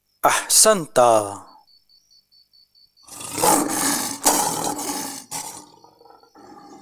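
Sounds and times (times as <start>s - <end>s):
speech: 0.2s - 1.5s
lion roaring and grunting: 3.1s - 6.8s.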